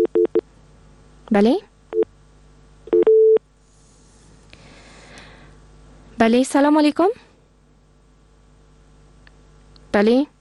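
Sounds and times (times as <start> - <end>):
speech: 1.3 - 1.7, 6.2 - 7.3, 10.0 - 10.4
telephone beeps and tone after a call is disconnected: 2.9 - 3.4.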